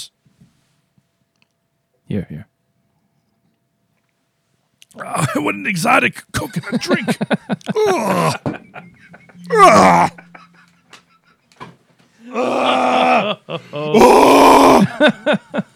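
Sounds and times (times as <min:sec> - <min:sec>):
speech: 0:02.1 - 0:02.5, 0:05.0 - 0:10.2, 0:12.3 - 0:15.7
laughter: 0:05.0 - 0:11.7, 0:12.3 - 0:15.7
man performing a mock anguished scream: 0:07.7 - 0:08.5, 0:09.4 - 0:10.6, 0:12.2 - 0:15.1.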